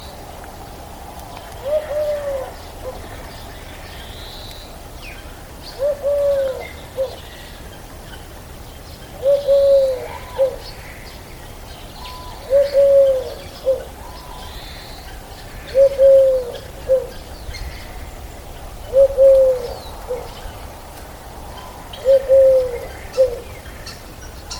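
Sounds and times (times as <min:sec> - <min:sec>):
Eurasian collared dove cooing: 0:01.6 - 0:03.2, 0:05.8 - 0:07.2, 0:09.1 - 0:10.8, 0:12.0 - 0:14.9, 0:15.5 - 0:18.1, 0:18.7 - 0:24.5.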